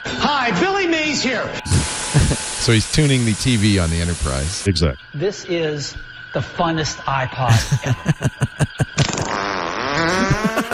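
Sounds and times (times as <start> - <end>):
speech: 0.3 - 9.2
laughter: 1.7 - 2.5, 7.5 - 9.1, 10.0 - 10.7
long buzzy fart: 9.0 - 10.7.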